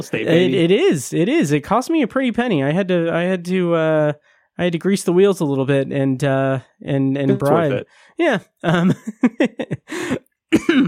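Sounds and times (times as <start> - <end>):
speech: 0.0 - 10.8
laughter: 7.3 - 7.8, 8.7 - 10.2
person coughing with short throaty coughs and a rasping hack: 9.9 - 10.8.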